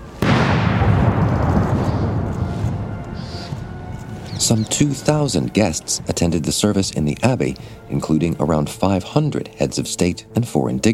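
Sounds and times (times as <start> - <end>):
artillery gun salute fired from Hyde Park: 0.2 - 5.9
speech: 4.5 - 10.9.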